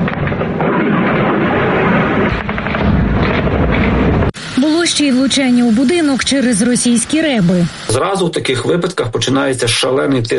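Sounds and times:
missile explosion at an oil refinery fuel storage tank: 0.0 - 4.6
speech: 5.0 - 10.3.

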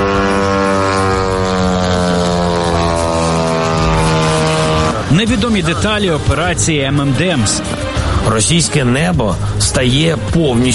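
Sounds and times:
loud steady propeller buzz: 0.0 - 10.7
speech: 5.1 - 10.7.

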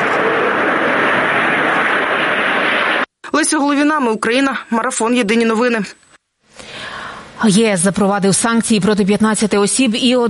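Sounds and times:
Mirage fighter jets flying over: 0.0 - 3.1
speech: 3.5 - 6.0, 7.4 - 10.2.

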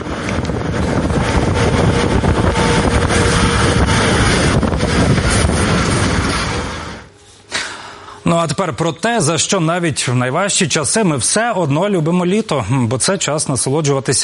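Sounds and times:
wind roaring in a fire whirl buffeting the microphone: 0.0 - 7.2
speech: 8.3 - 14.2.

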